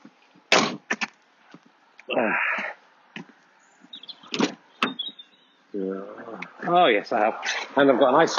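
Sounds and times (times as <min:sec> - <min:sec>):
speech: 0:02.1 - 0:02.5, 0:05.8 - 0:08.3
car door unlatching and swinging open: 0:04.3 - 0:05.1
knocks and clunks: 0:04.3 - 0:05.1.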